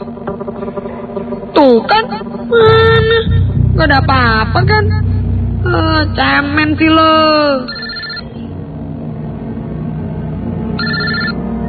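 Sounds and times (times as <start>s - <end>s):
steady low rumble of noise: 2.5s - 11.6s
speech: 3.8s - 5.0s, 5.6s - 7.7s
telephone ringing with a bright trilling tone: 7.7s - 8.3s, 10.8s - 11.4s.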